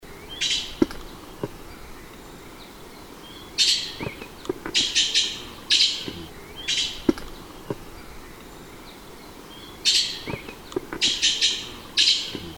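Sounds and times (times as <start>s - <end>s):
red-billed blue magpie: 0.1s - 12.5s.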